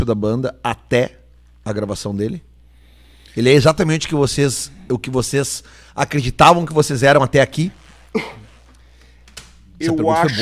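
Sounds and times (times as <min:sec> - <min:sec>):
speech: 0:00.0 - 0:02.5, 0:03.4 - 0:08.4, 0:09.8 - 0:10.3
person coughing: 0:08.1 - 0:08.6
faint throat noise: 0:08.1 - 0:08.7.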